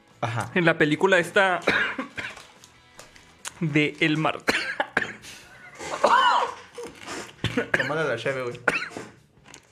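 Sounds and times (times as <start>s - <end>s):
speech: 0.2s - 2.3s, 3.6s - 4.6s, 7.9s - 8.8s
person coughing in a choking coughing fit with strained gasps: 1.6s - 2.4s, 4.4s - 9.2s.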